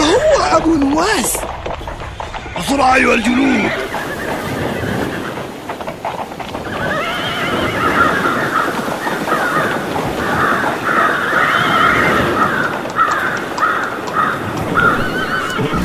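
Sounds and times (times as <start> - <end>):
hooves clopping and scuffling: 0.0 - 15.8
speech: 0.6 - 1.6, 2.7 - 4.3
horse neighing and whinnying: 2.2 - 9.6, 10.8 - 15.8.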